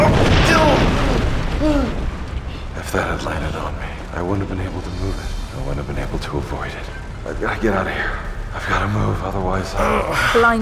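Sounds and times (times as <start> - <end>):
heavy stone block collapsing from ceiling into rubble: 0.0 - 2.4
speech: 2.9 - 10.6.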